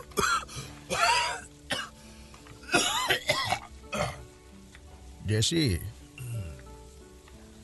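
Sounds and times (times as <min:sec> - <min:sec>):
harsh hacking coughs: 0:00.0 - 0:01.9, 0:02.6 - 0:04.2
speech: 0:05.3 - 0:06.0.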